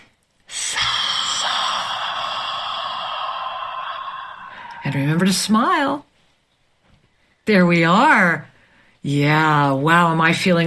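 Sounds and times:
deep breath drawn in during a guided meditation: 0.5 - 5.0
speech: 4.8 - 6.1, 7.5 - 10.6.

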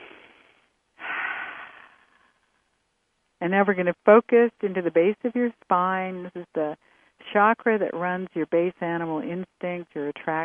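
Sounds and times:
deep breathing: 1.0 - 2.4
speech: 3.4 - 10.4.

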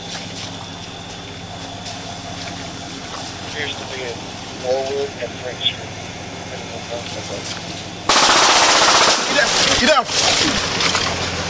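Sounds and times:
speech: 3.6 - 6.0, 6.9 - 7.8, 9.4 - 10.6
automatic weapon gunfire at police patrol vehicles: 8.1 - 10.4.

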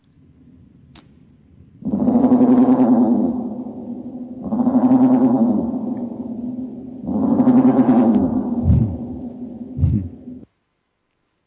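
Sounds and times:
raven calls slowed down: 1.8 - 10.4
short low thumps: 1.8 - 10.4.

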